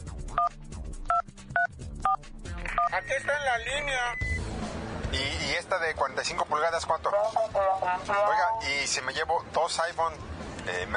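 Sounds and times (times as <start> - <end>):
cell phone DTMF keypad tones while dialing: 1.1 - 3.4
speech: 3.0 - 4.3, 5.1 - 10.9.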